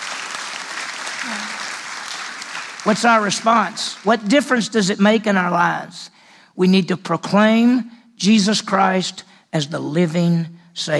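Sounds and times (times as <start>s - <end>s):
audience applause in a church: 0.0s - 4.3s
speech: 1.2s - 1.6s, 2.8s - 10.9s
person whooping: 1.2s - 1.7s.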